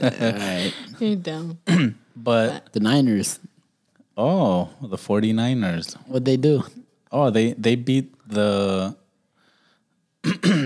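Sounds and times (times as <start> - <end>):
laughter: 0.0 - 1.0
speech: 0.0 - 3.5, 4.2 - 9.0, 10.2 - 10.6
person clearing throat: 1.7 - 2.0, 10.2 - 10.6.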